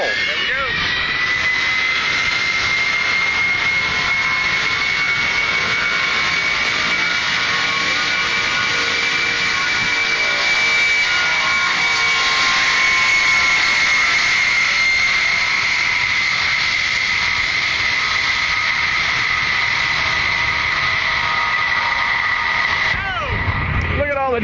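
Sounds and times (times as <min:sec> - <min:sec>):
cargo plane jet engines spooling up on takeoff roll: 0:00.0 - 0:24.4.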